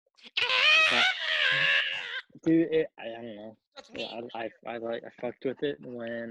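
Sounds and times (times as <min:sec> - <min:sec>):
voice imitating a wailing scream from a film theme song: 0:00.2 - 0:02.3
speech: 0:02.4 - 0:06.2.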